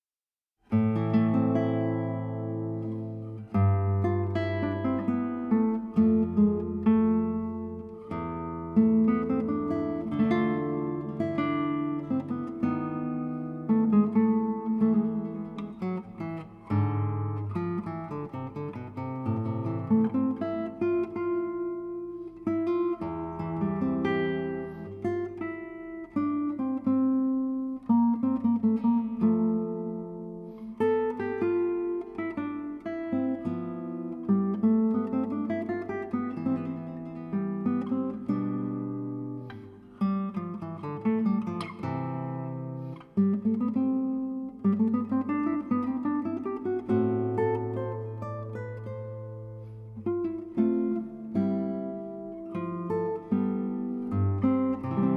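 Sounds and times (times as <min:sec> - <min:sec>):
guitar piece: 0:00.6 - 0:55.1.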